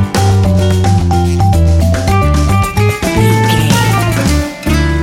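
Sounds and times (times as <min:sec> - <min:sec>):
fast swing Latin jazz music stinger: 0:00.2 - 0:04.9.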